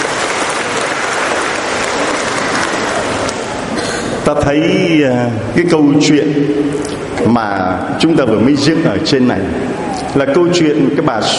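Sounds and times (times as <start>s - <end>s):
audience applause: 0.0s - 3.8s
speech: 4.3s - 11.3s.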